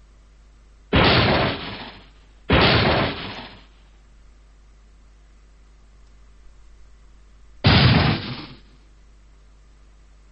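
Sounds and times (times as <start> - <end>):
gunshots inside a guesthouse: 0.9 - 3.7, 7.6 - 8.8.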